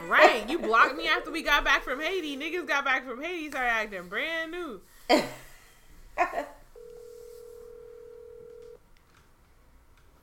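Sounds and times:
speech: 0.1 - 5.4, 6.2 - 6.6
phone line ringback tone: 6.8 - 8.8.

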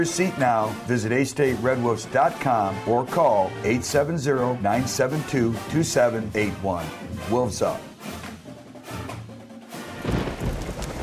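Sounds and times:
speech: 0.0 - 8.2
low rolling thunder: 9.9 - 11.0
pouring rain on a dark day: 9.9 - 11.0.

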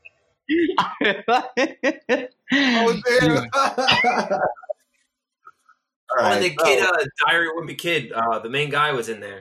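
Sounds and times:
speech: 0.5 - 4.6, 6.1 - 9.3
laughter: 1.0 - 4.7, 6.1 - 9.3
person coughing harshly: 2.8 - 4.5, 6.2 - 6.9.

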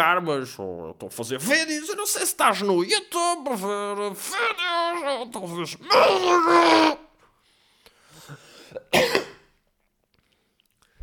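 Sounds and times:
speech: 0.0 - 7.0
person coughing: 8.7 - 9.5.

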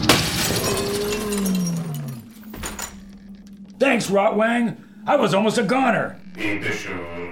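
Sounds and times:
window glass shattering: 0.0 - 3.1
speech: 3.9 - 7.2.

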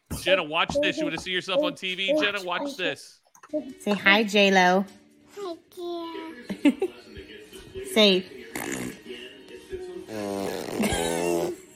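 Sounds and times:
speech: 0.2 - 9.0, 10.1 - 11.6
voice making fart noises with the lips: 8.5 - 9.1, 10.1 - 11.7.

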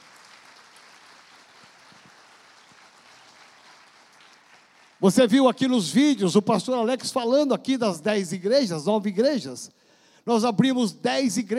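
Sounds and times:
crowd applauding: 0.0 - 5.3
speech: 5.0 - 11.5.

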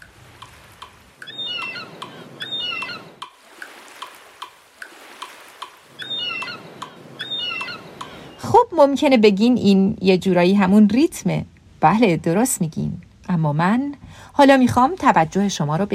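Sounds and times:
surf waves crashing on shore: 0.0 - 8.5
seagull cries: 1.2 - 3.2, 5.8 - 8.4
speech: 8.7 - 15.9.

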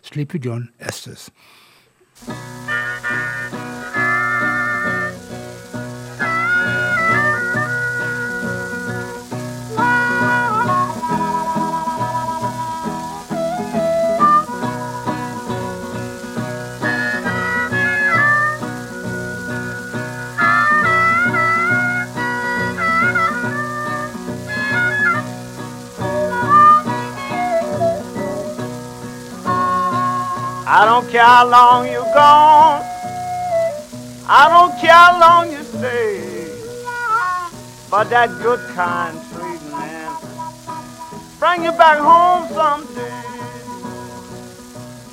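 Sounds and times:
speech: 0.0 - 3.2, 30.7 - 32.9, 34.3 - 36.2, 37.9 - 39.4, 41.4 - 43.3
old blues record playing: 2.2 - 45.1.

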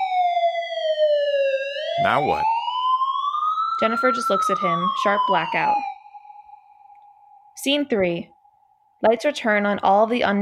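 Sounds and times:
police siren wailing: 0.0 - 6.9
speech: 2.0 - 2.5, 3.8 - 5.9, 7.6 - 8.3, 9.0 - 10.4.

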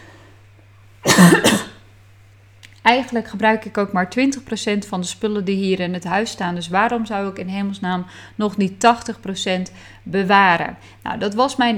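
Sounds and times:
faint steady low hum: 0.0 - 11.7
person coughing: 1.0 - 1.8
speech: 1.2 - 1.6, 2.9 - 11.7.

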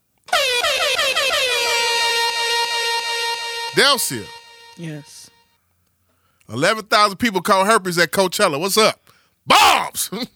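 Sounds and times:
loud sustained air horn blast with warbling pulses: 0.3 - 5.4
speech: 3.8 - 5.3, 6.5 - 10.3.

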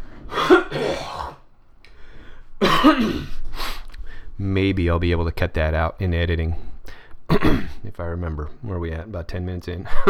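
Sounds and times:
throat clearing: 0.3 - 1.4, 2.6 - 3.4, 7.3 - 7.8
speech: 2.8 - 3.3, 4.4 - 6.7, 7.3 - 10.0.

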